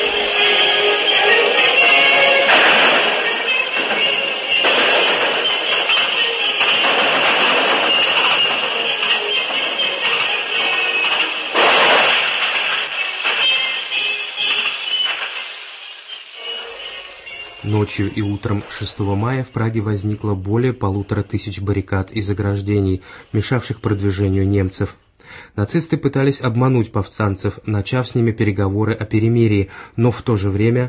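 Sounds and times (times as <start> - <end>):
thin crackly old radio music broadcast: 0.0 - 25.2
gunshots: 0.3 - 15.6
speech: 17.9 - 30.8.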